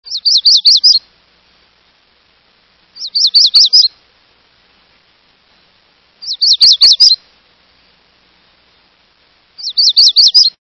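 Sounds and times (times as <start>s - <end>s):
Magnolia Warbler singing: 0.1s - 1.1s, 3.0s - 4.0s, 6.2s - 7.2s, 9.6s - 10.6s.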